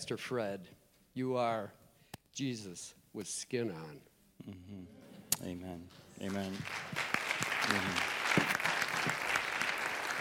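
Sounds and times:
speech: 0:00.0 - 0:01.8, 0:02.4 - 0:07.1, 0:07.7 - 0:08.2
audience in a church applauding: 0:06.2 - 0:10.1.

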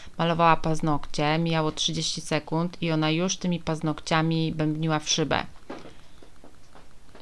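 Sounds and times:
speech: 0:00.2 - 0:05.6
faint soft pattering and shuffling of a dog moving around: 0:05.4 - 0:07.2.

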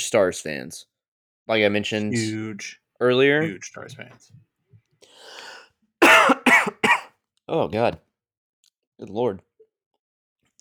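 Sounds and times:
speech: 0:00.1 - 0:00.9, 0:01.5 - 0:04.5, 0:07.5 - 0:08.1, 0:09.0 - 0:09.5
harsh coughs: 0:06.0 - 0:07.1
soft breathy throat clearing: 0:06.0 - 0:07.1.

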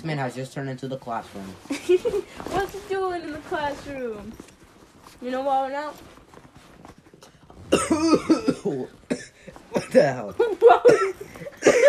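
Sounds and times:
speech: 0:00.0 - 0:04.6, 0:05.2 - 0:06.2, 0:07.7 - 0:11.8
person coughing in a throaty fit: 0:07.7 - 0:11.8.

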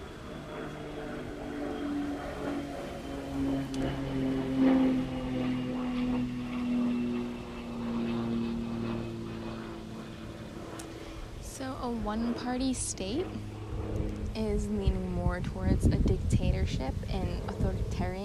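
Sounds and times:
propeller airplane droning overhead: 0:00.0 - 0:18.2
speech: 0:12.0 - 0:13.5, 0:14.4 - 0:18.2.

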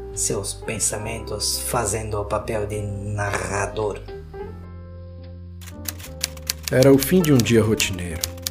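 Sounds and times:
speech: 0:00.2 - 0:04.2, 0:06.7 - 0:08.4
typewriter keys clacking: 0:05.6 - 0:08.5.

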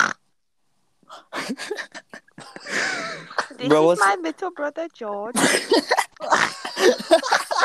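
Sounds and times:
speech: 0:01.1 - 0:02.0, 0:03.6 - 0:06.1
laughter: 0:01.4 - 0:04.4, 0:05.4 - 0:07.6
person imitating pig snorting oinks: 0:06.2 - 0:06.6.

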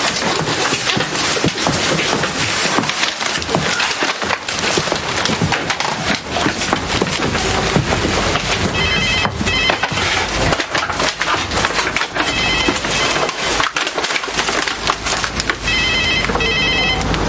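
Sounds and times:
constant dense crackling, splintering noise: 0:00.0 - 0:17.2
telephone ringing in short electronic bursts in a home kitchen: 0:08.6 - 0:11.0, 0:12.1 - 0:14.6, 0:15.4 - 0:17.2.

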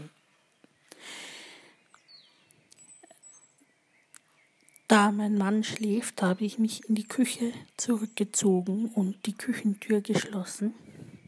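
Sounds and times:
quiet hiss: 0:00.0 - 0:07.9
faint birds singing and chirping outdoors at dawn: 0:00.0 - 0:11.2
speech: 0:04.9 - 0:10.9.

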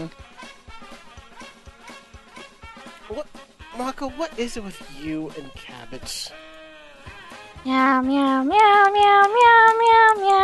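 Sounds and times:
speech: 0:00.0 - 0:00.4, 0:03.1 - 0:06.4, 0:07.6 - 0:10.4
person imitating a cat meowing: 0:07.7 - 0:10.4.

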